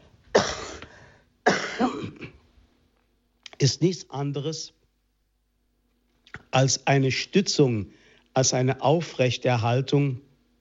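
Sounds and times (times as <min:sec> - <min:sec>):
harsh coughs: 0:00.3 - 0:02.4
speech: 0:03.6 - 0:04.8, 0:06.6 - 0:10.2.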